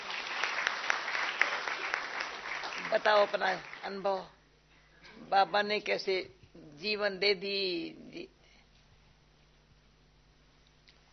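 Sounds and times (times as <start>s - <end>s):
audience clapping: 0.0s - 4.1s
speech: 2.9s - 4.4s, 5.1s - 8.4s.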